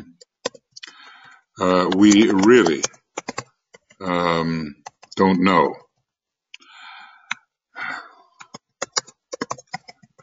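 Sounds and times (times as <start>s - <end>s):
typing on a Finnish computer keyboard: 0.0s - 4.1s, 4.8s - 5.2s, 8.4s - 10.2s
speech: 1.6s - 3.0s, 4.0s - 5.8s
breathy sighs: 6.6s - 8.4s.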